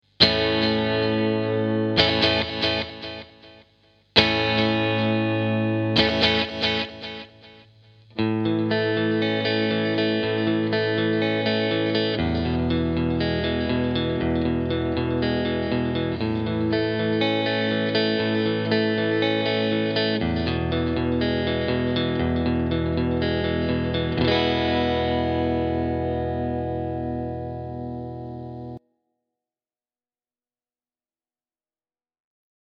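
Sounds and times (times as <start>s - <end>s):
modded digital delay pedal with switch in centre position: 0.2s - 28.8s.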